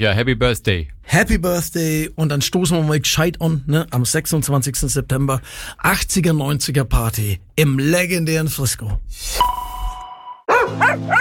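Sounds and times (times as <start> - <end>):
speech: 0.0 - 9.7, 10.6 - 11.2
ringing chime: 9.4 - 10.5
dog barking: 10.5 - 11.2.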